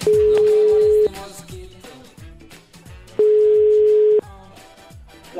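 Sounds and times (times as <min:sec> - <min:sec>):
telephone ringback tone as a call is placed: 0:00.1 - 0:01.1, 0:03.2 - 0:04.2.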